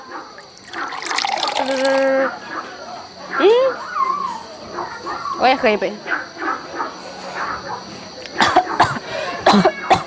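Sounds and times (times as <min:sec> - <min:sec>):
murmuring voices: 0:00.0 - 0:10.0
speech: 0:01.7 - 0:02.4, 0:05.4 - 0:06.3, 0:09.5 - 0:09.7
person coughing after drinking tea too fast: 0:08.4 - 0:10.0.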